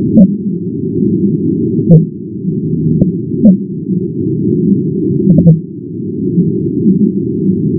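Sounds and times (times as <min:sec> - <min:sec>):
low rumble: 0:00.0 - 0:07.7
speech: 0:00.2 - 0:00.6, 0:01.9 - 0:02.2
fin whale calls sped up ten times: 0:01.8 - 0:02.2, 0:02.9 - 0:03.7, 0:04.6 - 0:05.7, 0:06.3 - 0:07.2.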